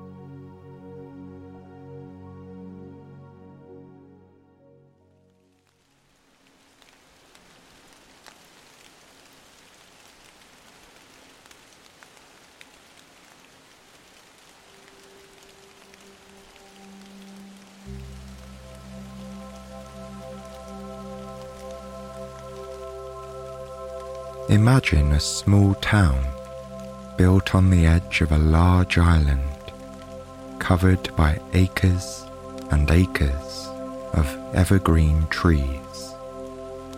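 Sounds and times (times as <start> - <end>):
soft sustained musical tones: 0.0 - 6.4, 14.4 - 36.9
rain pattering on a hard surface in Alaska: 5.2 - 36.9
speech: 24.5 - 26.4, 27.2 - 29.5, 30.7 - 35.9.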